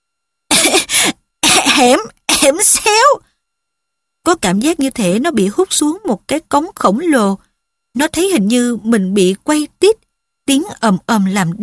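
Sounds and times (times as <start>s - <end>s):
person coughing harshly after swallowing a mouthful of ash: 0.5s - 2.0s
speech: 1.8s - 3.3s, 4.2s - 11.6s.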